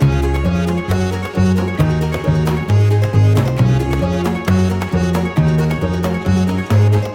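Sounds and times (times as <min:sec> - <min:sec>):
main music loop layer: 0:00.0 - 0:07.1.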